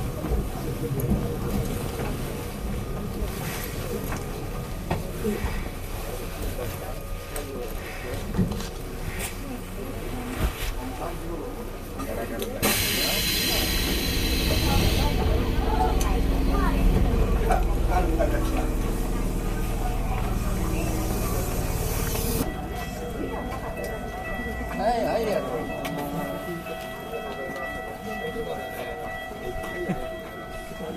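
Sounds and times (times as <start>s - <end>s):
faint voices: 0.0s - 30.9s
train rumbling and clattering as it slows at a station: 0.0s - 30.9s
loud pneumatic hiss of train doors releasing: 12.6s - 15.0s.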